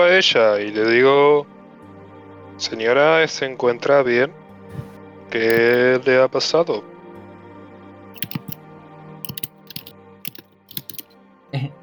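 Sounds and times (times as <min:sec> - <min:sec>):
speech: 0:00.0 - 0:01.5, 0:02.6 - 0:04.4, 0:05.3 - 0:06.9
typing on a computer keyboard: 0:05.5 - 0:05.8, 0:08.2 - 0:08.6, 0:09.2 - 0:11.1.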